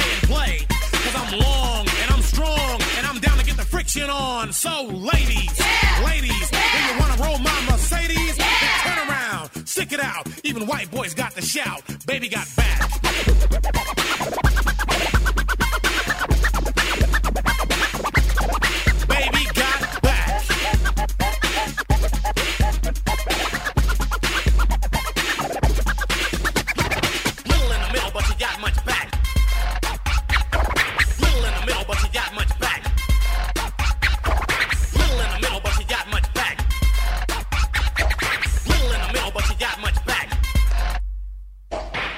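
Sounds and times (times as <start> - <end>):
punchy drums of a hip-hop song: 0.0 - 4.1, 5.1 - 9.2, 12.6 - 41.1
heavy booming bass line of a hip-hop song: 0.0 - 41.7
speech: 3.9 - 8.5, 9.8 - 14.4
record-scratch effects in a hip-hop song: 5.4 - 9.1, 12.6 - 41.0.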